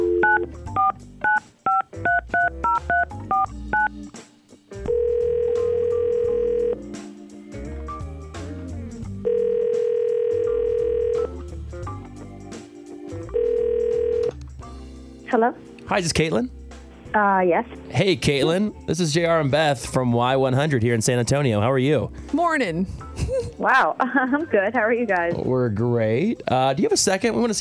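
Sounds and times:
long steady telephone ringback tones: 0.0s - 3.9s, 4.9s - 6.8s, 9.2s - 11.4s, 13.3s - 14.3s
touch-tone phone dialing beeps: 0.0s - 3.9s
music: 0.0s - 27.6s
speech: 15.4s - 16.6s, 17.2s - 23.0s, 23.6s - 27.6s.

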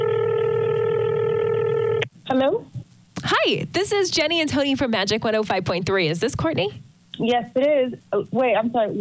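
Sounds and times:
electronic touch-tone telephone tone while dialing a phone call: 0.0s - 2.0s
speech: 2.3s - 8.9s.

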